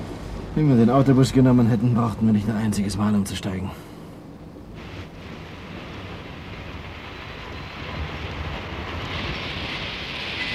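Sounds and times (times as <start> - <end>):
train standing at a station rumbling and hissing: 0.0 - 10.5
speech: 0.6 - 3.9.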